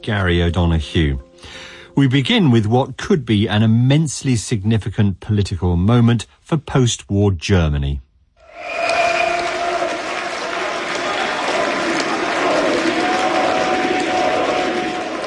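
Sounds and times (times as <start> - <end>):
speech: 0.0 - 9.0
crowd of political supporters cheering and applauding an election victory: 8.4 - 15.2.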